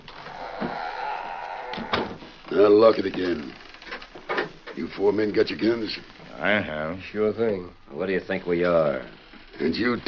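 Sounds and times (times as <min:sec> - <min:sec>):
heavy door scraping and creaking shut: 0:00.1 - 0:02.2
speech: 0:02.5 - 0:03.6, 0:04.8 - 0:10.0.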